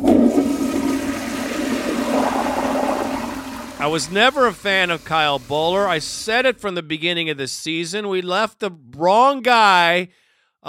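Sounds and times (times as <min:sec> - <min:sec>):
toilet flushing: 0:00.0 - 0:06.6
speech: 0:03.8 - 0:10.6.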